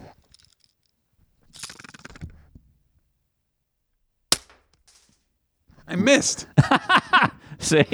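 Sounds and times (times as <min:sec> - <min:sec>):
BB pistol shot fired beside the microphone: 0:04.3 - 0:04.7
laughter: 0:05.8 - 0:07.9
speech: 0:06.0 - 0:07.9.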